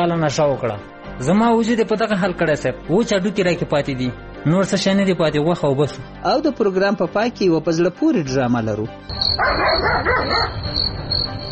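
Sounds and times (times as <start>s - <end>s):
speech: 0.0s - 11.4s
dog barking in a house at night: 9.2s - 10.8s.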